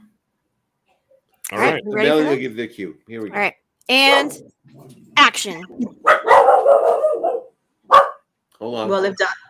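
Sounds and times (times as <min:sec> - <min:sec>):
speech: 0:01.5 - 0:06.1, 0:08.6 - 0:09.4
dogs barking: 0:05.9 - 0:08.3.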